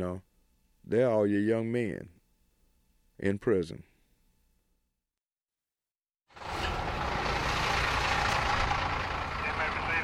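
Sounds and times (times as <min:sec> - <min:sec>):
speech: 0:00.0 - 0:02.2, 0:03.2 - 0:03.9
prison transport bus engine idling: 0:06.4 - 0:10.0.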